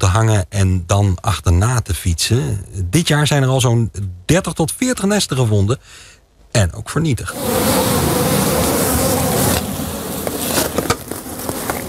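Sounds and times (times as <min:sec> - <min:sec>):
speech: 0:00.1 - 0:08.2
large wasp-like insects buzzing around beehives: 0:07.3 - 0:11.8.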